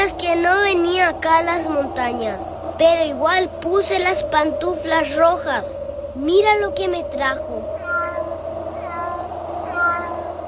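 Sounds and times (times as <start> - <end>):
speech: 0.0 - 7.7
faint steady noise: 0.0 - 10.4
small white kitten meowing in a slipper: 7.8 - 10.3.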